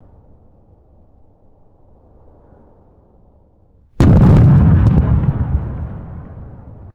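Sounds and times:
distant firework explosion with echo: 0:04.0 - 0:06.9.

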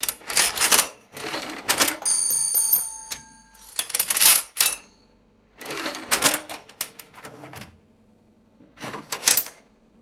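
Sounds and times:
cash register bell: 0:00.4 - 0:06.5
coins clinking: 0:02.0 - 0:04.9.

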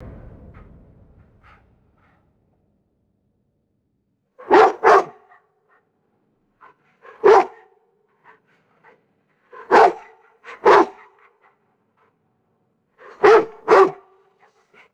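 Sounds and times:
distant deep gruff dog barks: 0:04.4 - 0:05.4, 0:06.6 - 0:07.7, 0:08.8 - 0:11.3, 0:13.0 - 0:14.9.

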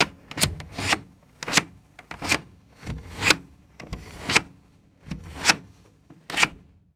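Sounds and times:
plastic car ventilation switch sliding and clicking: 0:00.0 - 0:06.7.

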